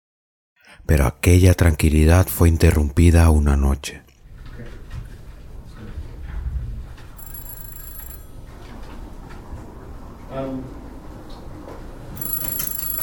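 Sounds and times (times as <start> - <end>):
speech: 0.8 - 4.1
old-style telephone bell ringing at a police station: 7.2 - 8.5, 12.2 - 13.0.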